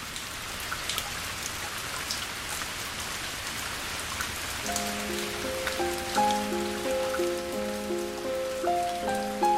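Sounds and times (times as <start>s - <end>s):
heavy rain from a sudden rain shower pouring down: 0.0s - 9.5s
soft sustained musical notes playing a slow melody: 4.6s - 9.5s.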